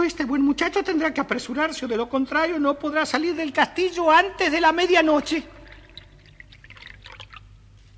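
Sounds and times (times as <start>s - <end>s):
speech: 0.1s - 5.6s
water being collected into a glass: 5.5s - 7.8s.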